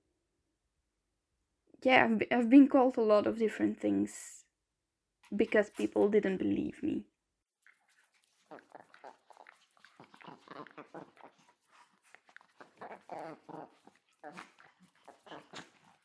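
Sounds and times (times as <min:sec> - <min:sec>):
speech: 0:01.8 - 0:04.4, 0:05.3 - 0:07.1, 0:12.9 - 0:14.5
service dog whimpering and whining: 0:08.5 - 0:16.0.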